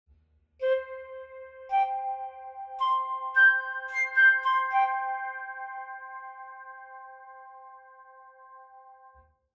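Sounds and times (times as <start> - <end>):
flute effects: 0.6 - 6.9.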